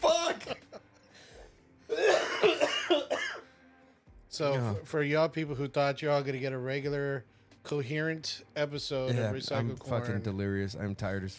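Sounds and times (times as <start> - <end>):
person in a harsh raspy coughing fit: 1.9 - 3.5
speech: 4.4 - 11.3.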